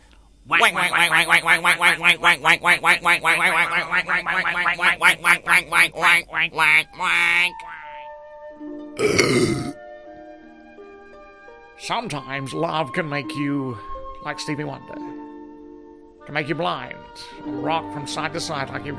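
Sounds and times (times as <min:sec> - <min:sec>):
ducks quacking: 0:00.5 - 0:08.2
harsh squawk: 0:00.5 - 0:08.2
speech: 0:00.6 - 0:07.7, 0:08.6 - 0:09.6, 0:11.8 - 0:15.2, 0:16.3 - 0:18.9.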